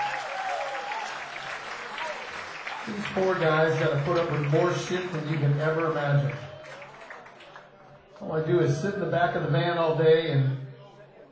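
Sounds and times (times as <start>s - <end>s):
audience applause for a live band at a comedy show: 0.0s - 7.9s
speech: 2.9s - 6.5s, 8.2s - 10.6s.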